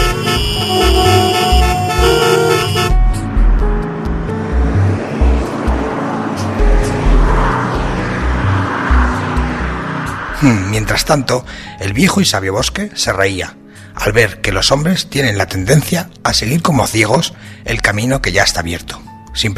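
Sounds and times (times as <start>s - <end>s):
long steady car horn blaring in busy street traffic: 0.0s - 3.2s
dense rumble of engines and passing vehicles: 0.0s - 11.9s
speech: 10.4s - 19.5s.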